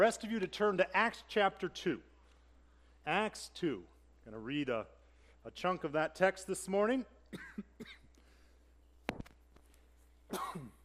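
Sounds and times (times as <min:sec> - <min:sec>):
speech: 0:00.0 - 0:02.1, 0:03.0 - 0:08.0
faint breathy noises: 0:02.3 - 0:03.0, 0:05.0 - 0:05.5, 0:08.2 - 0:08.8
man coughing into microphone: 0:07.3 - 0:08.1, 0:10.3 - 0:10.8
man clearing throat: 0:10.3 - 0:10.8.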